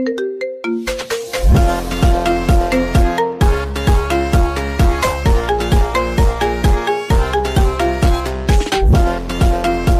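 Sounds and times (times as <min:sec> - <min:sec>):
phonk ringtone: 0:00.0 - 0:09.9.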